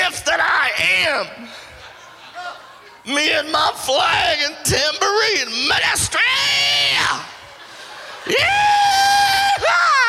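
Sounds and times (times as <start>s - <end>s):
laughter: 1.0s - 3.5s, 6.7s - 10.0s
speech: 1.1s - 1.7s, 3.0s - 7.3s, 8.3s - 9.0s
exuberant joyful high-pitched scream: 8.3s - 10.0s.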